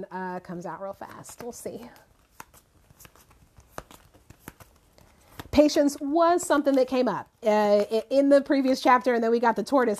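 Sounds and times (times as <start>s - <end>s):
speech: 0.0s - 2.1s, 5.6s - 9.9s
cards being shuffled: 0.7s - 8.2s.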